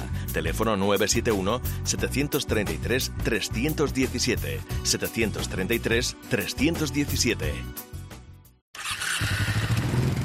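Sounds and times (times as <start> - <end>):
speech: 0.4 - 7.9
Suzuki motorcycle engine revving: 8.8 - 10.2.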